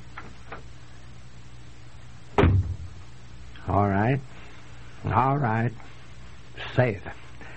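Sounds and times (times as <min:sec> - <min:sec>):
front door swinging shut with a solid thud: 0:02.3 - 0:02.9
speech: 0:04.1 - 0:04.3, 0:05.1 - 0:05.9, 0:06.7 - 0:07.3.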